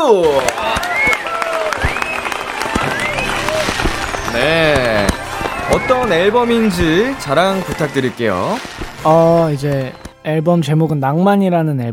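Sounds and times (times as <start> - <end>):
speech: 0.0 - 1.1, 5.7 - 11.9
excited voices calling and whooping: 0.0 - 8.6
several people clapping: 0.0 - 10.2.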